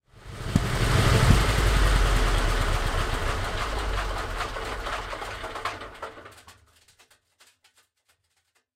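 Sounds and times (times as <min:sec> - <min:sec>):
Sherman M4A1 tank engine stopping: 0:00.1 - 0:06.5.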